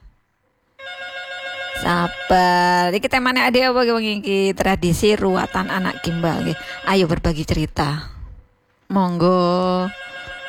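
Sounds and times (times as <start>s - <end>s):
telephone ringing for an incoming call: 0.8s - 4.3s, 5.0s - 7.7s, 9.5s - 10.4s
speech: 1.8s - 8.2s, 8.9s - 10.1s.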